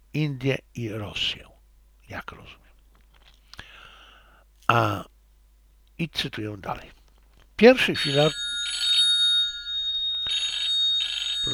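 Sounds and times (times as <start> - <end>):
speech: 0.2 - 1.5, 2.1 - 2.6, 4.7 - 5.1, 6.0 - 7.0, 7.6 - 8.8
telephone ringing with an incoming call: 7.9 - 11.5.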